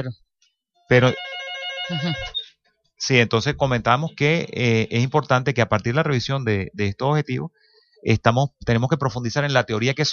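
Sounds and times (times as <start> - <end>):
speech: 0.0 - 0.3, 0.9 - 1.3, 1.9 - 2.4, 3.0 - 10.1
telephone ringing for an incoming call: 0.9 - 2.6.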